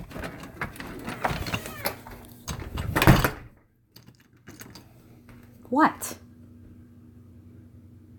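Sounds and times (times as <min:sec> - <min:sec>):
door handle and latch rattling and clunking as a door is opened: 0:00.0 - 0:04.9
door thud or swing as it opens: 0:02.5 - 0:03.6
speech: 0:05.7 - 0:06.2.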